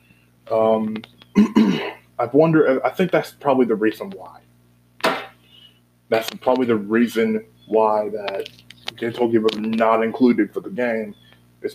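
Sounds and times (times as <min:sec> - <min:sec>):
speech: 0:00.5 - 0:04.4, 0:06.1 - 0:11.7
person hiccuping mid-sentence: 0:01.3 - 0:02.0.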